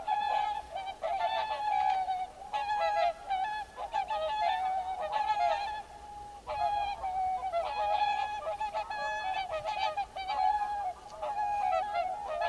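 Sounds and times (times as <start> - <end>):
mute swan Cygnus olor nasal droning chorus: 0.0 - 12.4.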